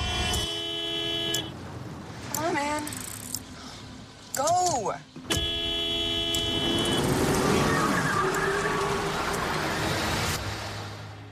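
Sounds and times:
car horn honking: 0:00.2 - 0:01.6, 0:05.2 - 0:07.4
speech: 0:04.7 - 0:05.4
car engine roaring and revving as the vehicle accelerates away: 0:05.5 - 0:11.2.

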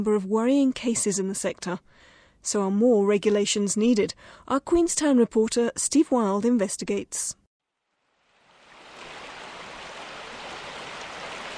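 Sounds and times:
speech: 0:00.0 - 0:07.4
rapids of the Kawerau River in New Zealand rushing: 0:08.8 - 0:11.5.

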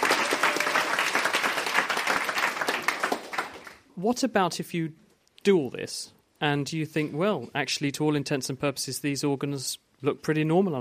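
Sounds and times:
audience applause: 0:00.0 - 0:03.8
speech: 0:04.0 - 0:10.7.

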